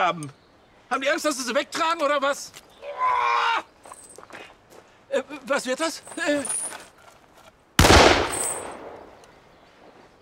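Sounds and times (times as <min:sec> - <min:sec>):
speech: 0:00.0 - 0:03.7, 0:05.1 - 0:06.7
gunshot: 0:07.8 - 0:09.1.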